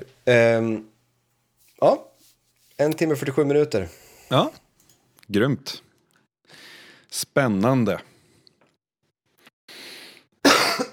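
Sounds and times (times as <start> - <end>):
speech: 0.3 - 0.9, 1.8 - 2.1, 2.8 - 4.6, 5.3 - 5.9, 6.5 - 8.1
person coughing harshly: 10.4 - 10.9.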